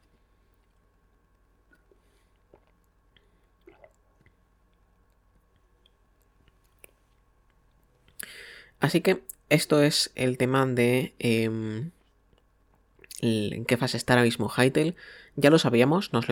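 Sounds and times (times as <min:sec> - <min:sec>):
person sipping water: 0:00.5 - 0:07.3
swallowing: 0:01.6 - 0:04.9
speech: 0:08.3 - 0:12.0, 0:13.2 - 0:16.3.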